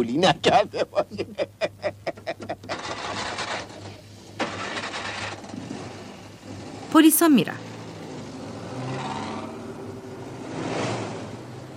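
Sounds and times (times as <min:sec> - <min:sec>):
speech: 0:00.0 - 0:02.0, 0:07.0 - 0:07.7
laughter: 0:00.5 - 0:03.0
car arriving with rushing engine and road noise: 0:02.7 - 0:11.7.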